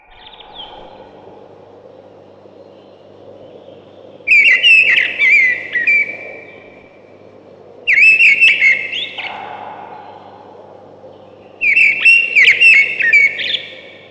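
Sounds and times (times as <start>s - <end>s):
ring ouzel loud fluty whistled phrase: 4.3s - 6.7s, 7.9s - 10.5s, 11.6s - 14.0s.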